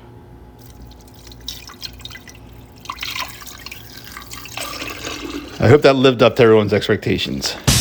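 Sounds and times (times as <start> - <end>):
apple juice pouring into a glass fermenter: 0.6 - 6.0
speech: 5.6 - 7.7.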